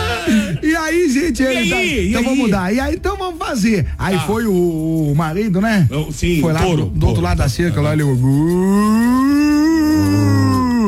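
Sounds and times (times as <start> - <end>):
speech: 0.3 - 9.5
person imitating a cow mooing: 8.6 - 10.8.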